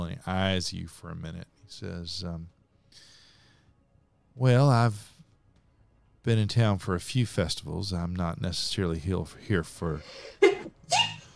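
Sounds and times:
speech: 0:00.1 - 0:03.1, 0:04.4 - 0:05.1, 0:06.2 - 0:11.1
person sneezing: 0:10.2 - 0:11.3.

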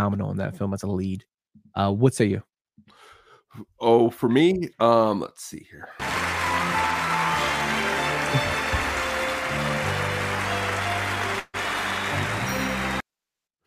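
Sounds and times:
speech: 0:00.0 - 0:07.0, 0:08.3 - 0:08.6
large crowd applauding at an awards ceremony: 0:06.0 - 0:13.0.

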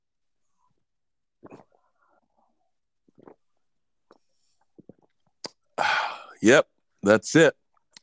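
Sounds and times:
loud wet slurping sips of a drink: 0:03.1 - 0:03.4
speech: 0:06.4 - 0:07.6.

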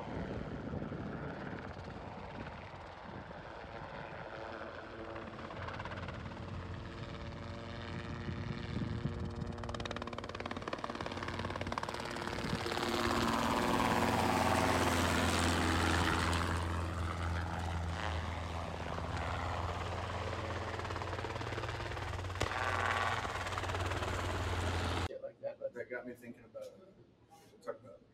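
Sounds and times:
helicopter flying during deer net capture: 0:00.0 - 0:25.1
voices: 0:25.1 - 0:28.0.

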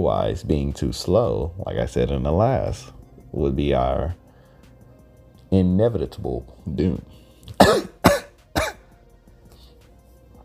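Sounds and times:
speech: 0:00.0 - 0:04.2, 0:05.5 - 0:07.9
person half choking, half coughing with a laugh: 0:07.5 - 0:08.9.

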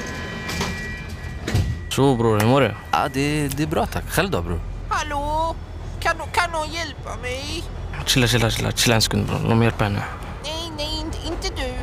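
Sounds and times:
metro train doors thudding shut: 0:00.0 - 0:02.6
metro train rumbling and pulling away: 0:00.0 - 0:11.8
speech: 0:02.0 - 0:11.8.

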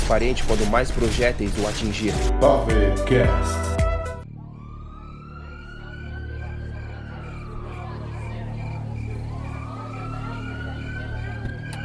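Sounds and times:
speech: 0:00.1 - 0:03.8
police car siren wailing: 0:03.0 - 0:11.8
idling police cars rumbling: 0:05.6 - 0:11.8.

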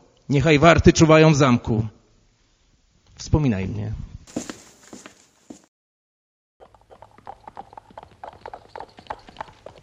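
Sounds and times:
speech: 0:00.3 - 0:02.0, 0:03.2 - 0:04.4
several horses' hooves clattering on hard ground as riders ride away: 0:06.6 - 0:09.8.

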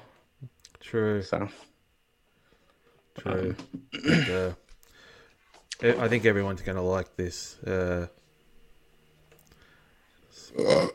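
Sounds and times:
speech: 0:00.4 - 0:01.7, 0:03.2 - 0:04.6, 0:05.8 - 0:08.2, 0:10.4 - 0:10.9
person burping: 0:03.3 - 0:04.6, 0:10.4 - 0:10.9.

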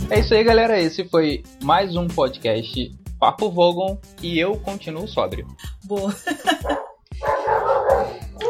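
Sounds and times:
speech: 0:00.1 - 0:07.3
laughter: 0:06.0 - 0:08.0
dog barking: 0:06.6 - 0:08.4.

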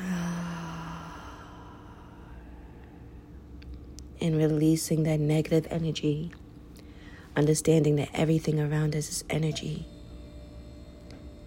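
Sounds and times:
deep breath in and out: 0:00.0 - 0:03.4, 0:06.8 - 0:07.3
faint low hum: 0:00.0 - 0:11.4
speech: 0:04.2 - 0:06.4, 0:07.4 - 0:09.9.

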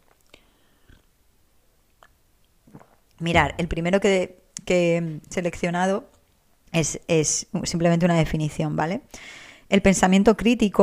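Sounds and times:
sips and swallowing of someone drinking coffee: 0:02.0 - 0:03.6
speech: 0:03.2 - 0:06.1, 0:06.7 - 0:10.8.

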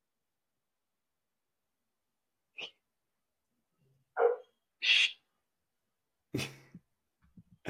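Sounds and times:
dog barking: 0:04.2 - 0:04.6.

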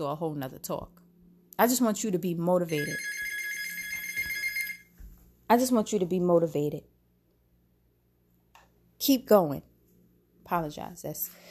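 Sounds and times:
speech: 0:00.0 - 0:01.0, 0:01.6 - 0:03.2, 0:05.5 - 0:06.9, 0:09.0 - 0:09.7, 0:10.5 - 0:11.5
house landline telephone ringing: 0:02.7 - 0:04.9.

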